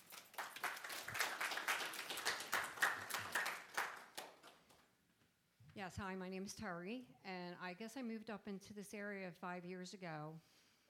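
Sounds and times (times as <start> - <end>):
audience clapping in a room: 0.0 - 4.8
speech: 5.8 - 10.5.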